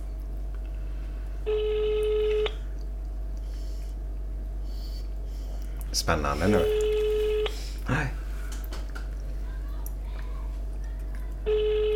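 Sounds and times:
low hum: 0.0 - 11.9
phone ringback tone on speakerphone: 1.5 - 2.6, 6.6 - 7.5, 11.5 - 11.9
speech: 6.0 - 6.8, 7.9 - 8.2.

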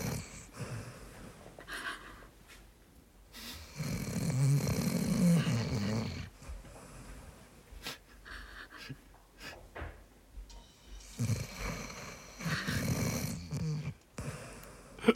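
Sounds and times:
dog snoring on a sofa: 0.0 - 1.1, 3.4 - 7.2, 11.0 - 14.8.

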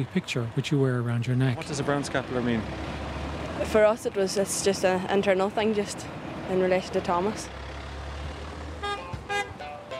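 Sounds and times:
speech: 0.0 - 3.0, 3.6 - 7.6
bus engine droning on the road in Dublin, Ireland: 0.0 - 9.9
bus horn toots: 8.8 - 9.9.

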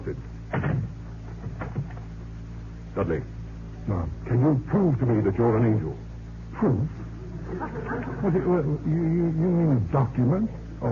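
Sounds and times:
speech: 0.1 - 0.3, 3.0 - 10.9
door shutting with a soft low thud: 0.5 - 2.0
laughter: 7.0 - 9.0.

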